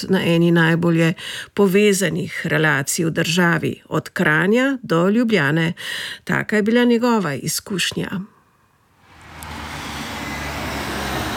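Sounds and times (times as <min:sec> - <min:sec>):
speech: 0:00.0 - 0:08.3
road traffic at a bus stop beside a main road in Kranj Slovenia: 0:09.0 - 0:11.3.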